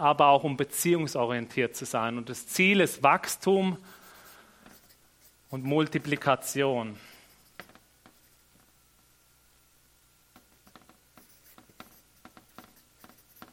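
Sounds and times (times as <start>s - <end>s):
speech: 0.0s - 4.0s, 5.5s - 7.1s
pen scratching and squeaking across a board: 4.1s - 6.2s, 7.1s - 8.5s, 10.6s - 13.5s.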